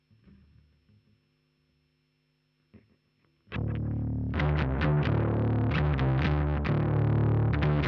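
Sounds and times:
bass guitar recorded direct: 0:03.5 - 0:07.8.

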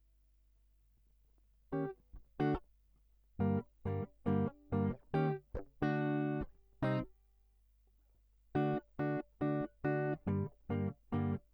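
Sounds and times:
guitar line: 0:01.8 - 0:02.6, 0:03.4 - 0:07.1, 0:08.6 - 0:11.4.

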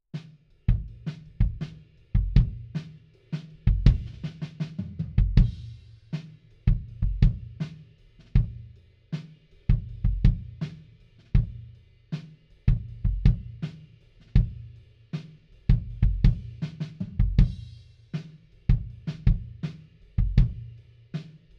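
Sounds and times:
kick drum beat: 0:00.7 - 0:02.8, 0:03.6 - 0:05.8, 0:06.6 - 0:07.7, 0:08.3 - 0:08.7, 0:09.7 - 0:11.7, 0:12.7 - 0:14.8, 0:15.7 - 0:17.8, 0:18.7 - 0:20.8.

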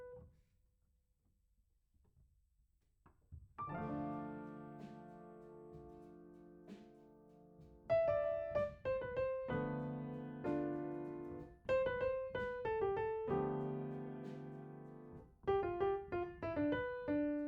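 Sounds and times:
piano note A: 0:03.6 - 0:17.4.

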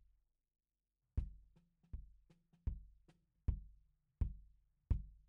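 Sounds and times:
kick drum: 0:01.2 - 0:05.2.

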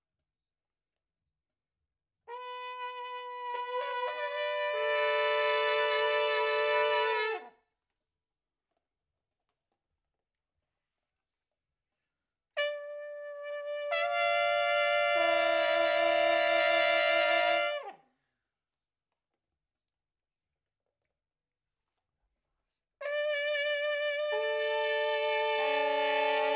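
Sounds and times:
trumpet in a room: 0:02.3 - 0:07.6, 0:12.6 - 0:18.0, 0:23.0 - 0:26.5.

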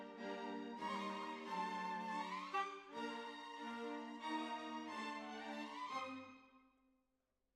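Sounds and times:
oboe: 0:00.2 - 0:06.1.

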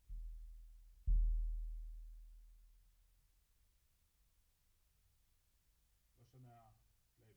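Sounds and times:
bass drum: 0:00.0 - 0:02.8.

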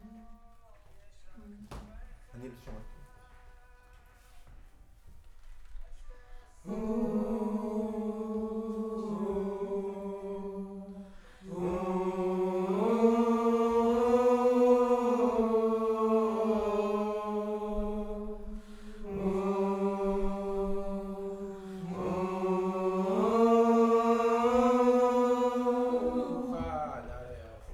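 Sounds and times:
distant choir singing: 0:06.3 - 0:27.7.

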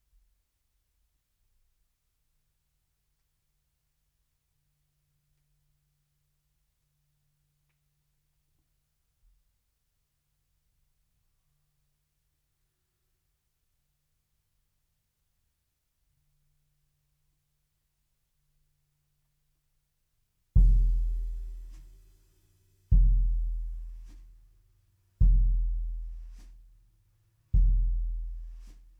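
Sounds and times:
bass drum: 0:20.6 - 0:24.6, 0:25.2 - 0:26.9, 0:27.5 - 0:28.9.

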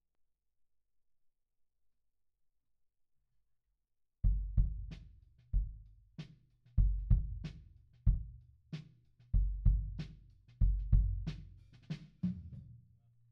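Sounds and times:
kick drum beat: 0:04.3 - 0:05.0, 0:05.6 - 0:05.9, 0:06.8 - 0:08.3, 0:09.4 - 0:11.5.

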